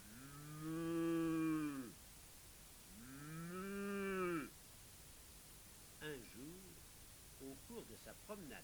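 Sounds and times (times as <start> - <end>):
cow mooing: 0.1 - 1.9, 3.0 - 4.5
speech: 0.6 - 0.9, 7.4 - 8.6.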